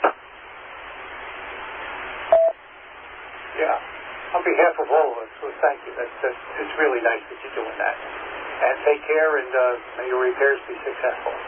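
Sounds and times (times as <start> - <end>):
steady radio-style hiss: 0.0 - 11.4
phone dialing tone beeps calling a cell phone: 2.3 - 2.6
speech: 3.6 - 11.4.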